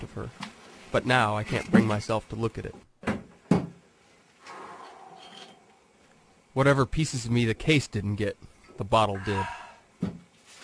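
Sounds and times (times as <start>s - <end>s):
speech: 0.2s - 2.9s, 6.6s - 10.2s
solid wooden thump of drawer: 3.0s - 3.8s.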